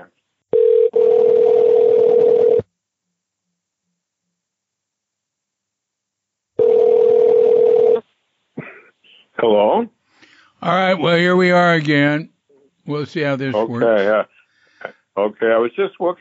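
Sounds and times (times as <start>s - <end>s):
telephone dial tone on a line being dialed for a call back: 0.6s - 2.6s, 6.6s - 8.0s
speech: 10.7s - 12.3s, 12.9s - 14.4s, 15.2s - 16.2s.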